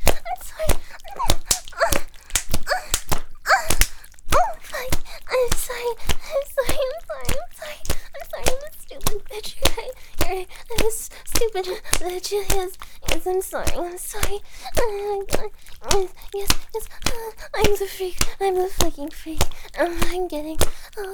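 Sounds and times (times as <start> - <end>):
person whimpering and crying out: 0.0 - 4.8
sharp slaps: 0.0 - 20.8
speech: 11.5 - 21.1.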